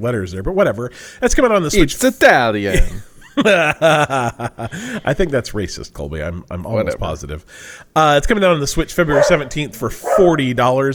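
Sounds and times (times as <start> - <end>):
speech: 0.0 - 10.9
laughter: 2.6 - 5.4
dog barking: 9.1 - 10.4.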